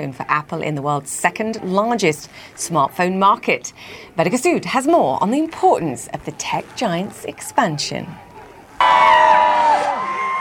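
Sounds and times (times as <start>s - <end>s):
speech: 0.0s - 8.3s
crowd cheering and chanting at store opening in Mumbai: 8.8s - 10.3s.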